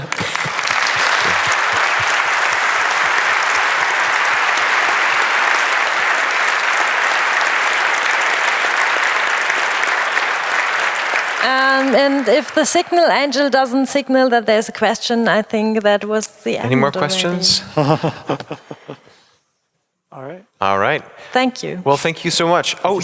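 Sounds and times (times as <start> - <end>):
laughter: 0.0 - 3.6, 16.7 - 19.3
applause from a large audience: 0.0 - 13.5
speech: 11.9 - 19.0, 20.2 - 23.0.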